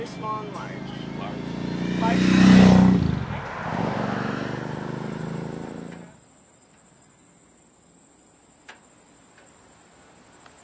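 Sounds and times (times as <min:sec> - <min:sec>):
motorcycle engine roaring on a night road: 0:00.0 - 0:06.2.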